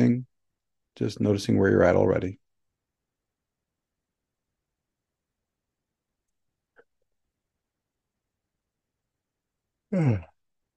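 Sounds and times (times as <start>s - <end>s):
speech: 1.0s - 2.4s, 9.9s - 10.3s
person yawning: 9.9s - 10.4s.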